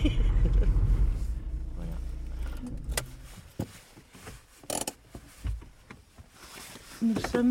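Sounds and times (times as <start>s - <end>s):
car engine rumbling: 0.0s - 6.2s
speech: 7.0s - 7.4s.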